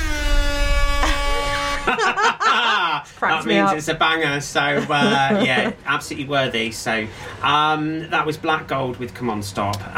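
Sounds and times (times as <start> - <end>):
dub siren electronic air horn blast: 0.0 - 2.1
laughter: 1.0 - 6.0
speech: 3.0 - 9.9.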